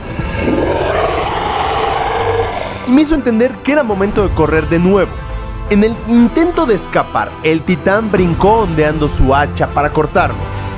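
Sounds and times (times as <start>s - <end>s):
huge deep growling roar with low rumble: 0.0s - 3.3s
speech: 2.9s - 10.6s.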